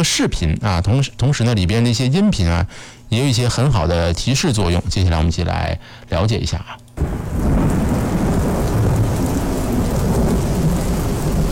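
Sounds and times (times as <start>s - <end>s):
speech: 0.0s - 7.6s
deep rumble of thunder: 7.0s - 11.5s
heavy rain: 7.0s - 11.5s.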